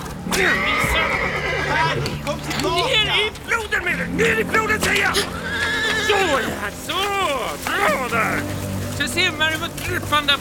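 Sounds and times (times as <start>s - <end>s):
noise: 0.0s - 10.3s
horse whinnying: 0.3s - 2.8s, 5.0s - 6.7s
speech: 0.4s - 1.1s, 1.7s - 10.3s.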